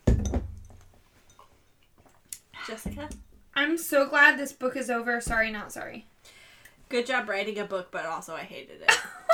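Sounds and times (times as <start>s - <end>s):
glasses clinking in a toast: 0.2s - 1.9s
speech: 2.7s - 6.1s, 6.9s - 9.2s.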